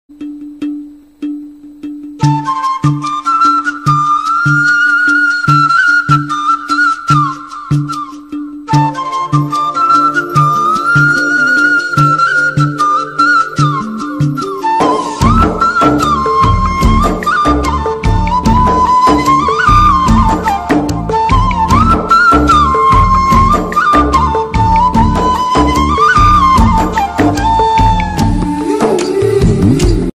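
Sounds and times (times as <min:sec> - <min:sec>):
flute background music: 0:00.2 - 0:30.1.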